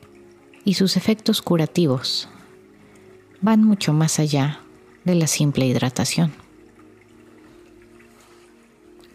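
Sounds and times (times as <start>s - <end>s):
water flowing with a soft trickling texture: 0.0s - 9.1s
speech: 0.7s - 2.4s, 3.4s - 6.4s.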